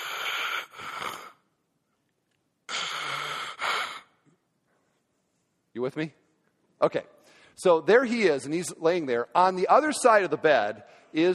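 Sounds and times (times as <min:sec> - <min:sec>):
person imitating hissing breathing through a respirator mask: 0:00.0 - 0:01.5, 0:02.7 - 0:04.3
speech: 0:05.8 - 0:06.2, 0:06.8 - 0:11.3.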